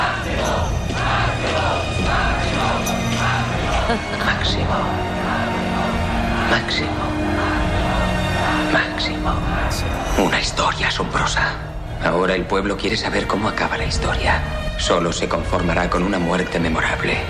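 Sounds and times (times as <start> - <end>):
dense crowd roaring and shouting: 0.0 - 10.7
speech: 6.6 - 7.1, 9.0 - 17.2.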